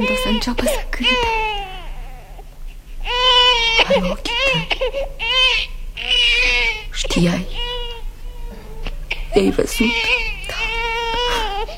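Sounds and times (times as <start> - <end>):
speech: 0.0 - 1.4, 4.0 - 6.4, 7.1 - 7.6, 9.4 - 10.2
baby crying after waking up: 0.0 - 11.7.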